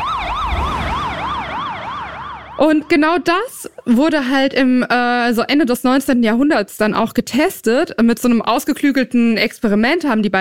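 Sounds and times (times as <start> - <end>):
low traffic rumble: 0.0 - 3.8
emergency siren passing with Doppler effect: 0.0 - 4.5
speech: 2.6 - 10.3.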